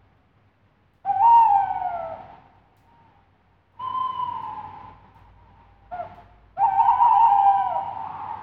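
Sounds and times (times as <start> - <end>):
tawny owl hooting at night: 1.0 - 2.4, 3.8 - 5.0, 5.9 - 8.4.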